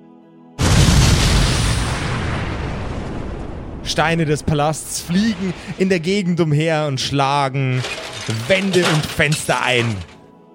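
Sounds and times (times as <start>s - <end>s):
loud deep explosion: 0.6s - 6.4s
speech: 3.9s - 10.1s.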